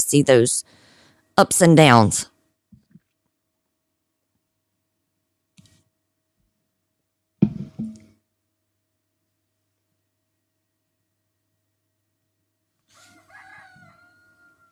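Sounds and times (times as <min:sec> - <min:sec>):
speech: 0:00.1 - 0:00.8, 0:01.4 - 0:02.3
rooster crowing: 0:12.9 - 0:14.7.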